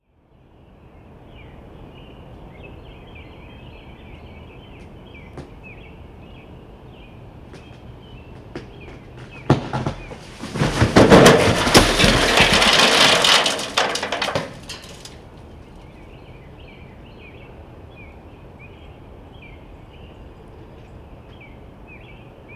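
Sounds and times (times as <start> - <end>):
tree branch crashing into fence: 8.6 - 15.2.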